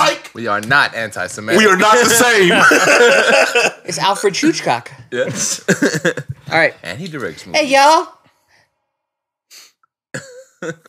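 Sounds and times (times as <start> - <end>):
speech: 0.4 - 8.2, 9.5 - 10.8
laughter: 1.6 - 4.1, 5.2 - 6.4
person sniffing close to the mic: 9.5 - 9.9.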